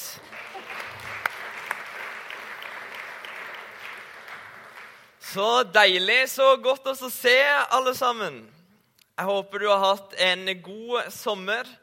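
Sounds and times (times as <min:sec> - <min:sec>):
crowd applause: 0:00.0 - 0:05.2
speech: 0:05.3 - 0:08.6, 0:09.2 - 0:11.8.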